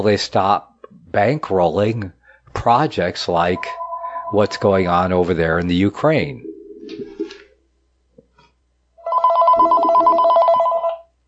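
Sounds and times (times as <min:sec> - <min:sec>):
speech: 0:00.0 - 0:07.1
telephone ringing with an incoming call: 0:03.6 - 0:05.2, 0:09.0 - 0:11.0.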